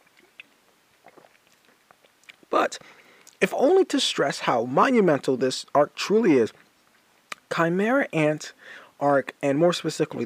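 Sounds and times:
person sipping a Monster energy drink: 0.0s - 2.5s
speech: 2.5s - 6.6s, 7.5s - 10.2s.

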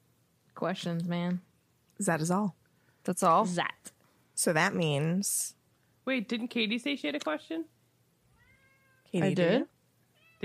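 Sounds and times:
speech: 0.6s - 3.8s, 4.4s - 7.8s, 9.1s - 9.7s
cat meowing loudly: 8.4s - 9.3s, 10.2s - 10.4s.

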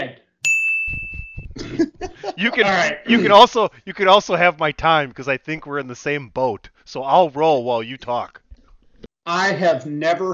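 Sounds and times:
bell ringing with a bright high ding: 0.4s - 1.6s
laughter: 1.6s - 3.7s
speech: 2.4s - 8.4s, 9.3s - 10.3s.

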